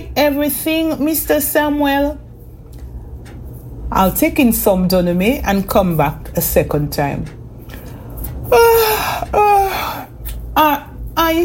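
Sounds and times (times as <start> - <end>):
speech: 0.2 - 2.2, 3.9 - 7.4, 8.5 - 9.5, 10.6 - 11.4
woman yawning: 8.5 - 10.1.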